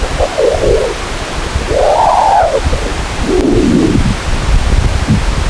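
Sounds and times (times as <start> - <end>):
sonified plasma waves from the solar wind chirping: 0.0 - 4.2
constant broadband hiss: 0.0 - 5.4.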